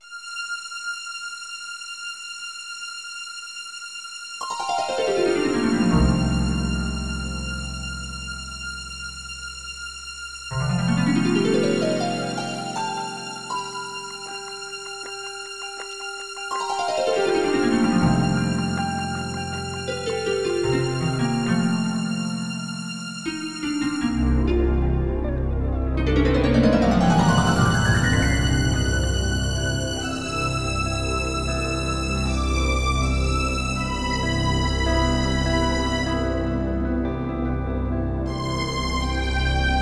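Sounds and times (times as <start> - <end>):
orchestral music: 4.4 - 39.8.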